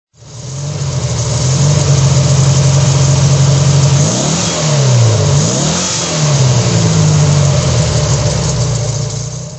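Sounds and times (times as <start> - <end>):
Porsche Speedster 1500 engine throttle: 0.2 - 9.5.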